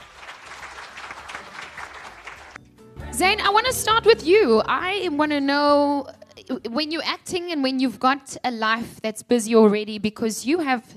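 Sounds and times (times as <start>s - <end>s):
audience applause: 0.0s - 2.6s
speech: 3.2s - 10.9s.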